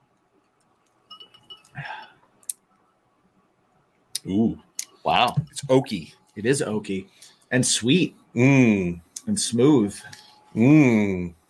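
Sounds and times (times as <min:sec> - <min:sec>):
glasses clinking in a toast: 0:01.1 - 0:01.8
speech: 0:04.3 - 0:11.4.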